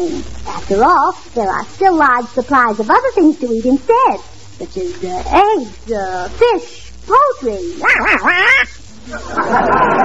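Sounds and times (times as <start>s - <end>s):
speech: 0.0s - 10.0s
duck quacking: 7.8s - 8.8s
laughter: 8.0s - 10.0s.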